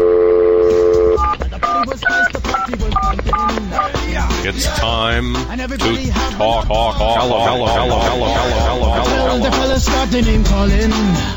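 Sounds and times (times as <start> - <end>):
telephone dial tone: 0.0 - 3.9
speech: 4.5 - 11.3
laughter: 5.8 - 10.2.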